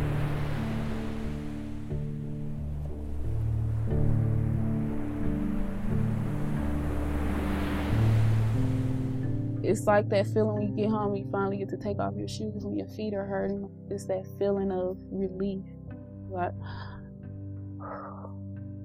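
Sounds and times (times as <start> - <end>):
ocean waves breaking on shore: 0.0 - 9.6
speech: 9.7 - 16.8.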